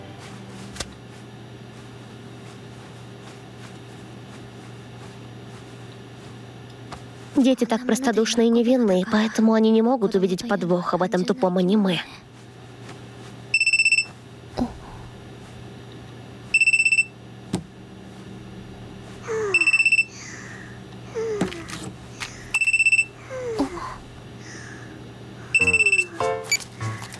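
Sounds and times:
speech: 7.4 - 12.2
telephone ringing with high electronic tones: 13.6 - 14.1, 16.6 - 17.1, 19.5 - 20.1, 22.5 - 23.2, 25.6 - 27.1.

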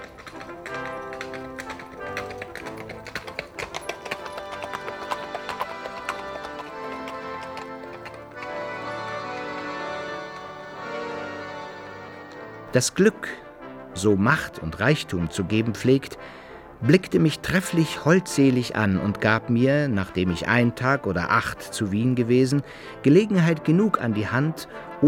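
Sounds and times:
horses' hooves clip-clopping as two riders travel: 0.0 - 25.0
music: 0.0 - 25.0
speech: 12.8 - 13.4, 14.0 - 25.0.

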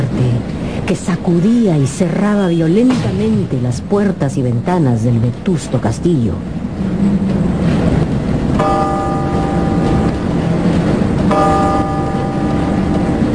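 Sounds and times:
steady noise: 0.0 - 13.3
speech: 0.9 - 7.4
bell striking twelve o'clock in an old castle: 8.6 - 10.2, 11.3 - 13.3.

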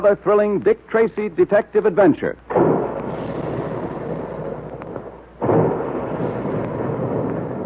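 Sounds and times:
speech: 0.0 - 2.7
big guns at cereal plant booming: 2.5 - 7.6
heavy blast: 2.5 - 7.6
steady roaring rumble: 2.5 - 7.6.

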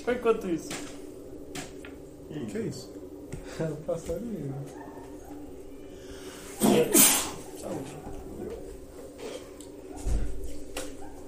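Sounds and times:
speech: 0.0 - 1.0, 2.3 - 4.8, 6.8 - 8.2
person sneezing: 6.6 - 7.4.

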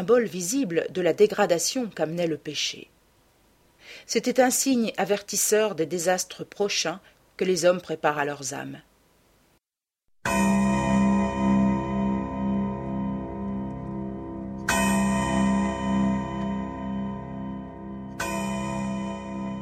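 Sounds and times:
speech: 0.0 - 3.0, 3.9 - 8.9
clock chiming the hours with metallic strokes: 10.3 - 19.5.

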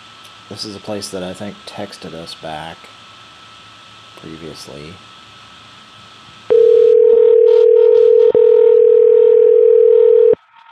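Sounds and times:
speech: 0.5 - 3.0, 4.2 - 5.1
telephone ringing tone on an outgoing call: 6.5 - 10.4.

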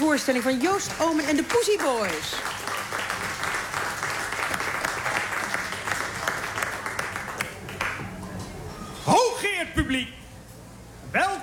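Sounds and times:
theatre festival audience applauding: 0.0 - 8.0
speech: 0.2 - 2.7, 9.8 - 10.2.

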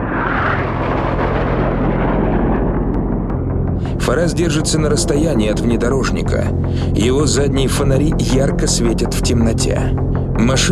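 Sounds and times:
airplanes flying over a city: 0.0 - 7.4
speech: 4.1 - 10.7.

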